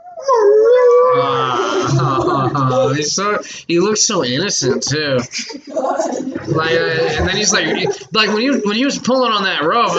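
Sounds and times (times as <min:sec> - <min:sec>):
dog whining into a howl-like cry: 0:00.0 - 0:03.5
speech: 0:01.2 - 0:09.9
laughter: 0:01.3 - 0:09.9.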